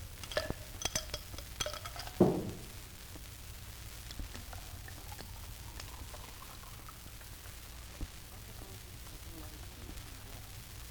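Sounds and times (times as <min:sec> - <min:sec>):
carbonated water poured over ice cubes: 0:00.0 - 0:02.8, 0:04.1 - 0:09.1
carbonated water fizzing with rising bubbles: 0:00.0 - 0:03.0, 0:04.0 - 0:10.8
ice cubes clinking against the sides of a glass: 0:00.2 - 0:02.8.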